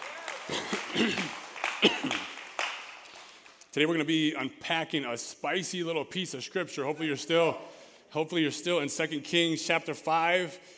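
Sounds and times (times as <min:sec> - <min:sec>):
crowd applauding in a large room: 0:00.0 - 0:03.7
speech: 0:03.8 - 0:10.7.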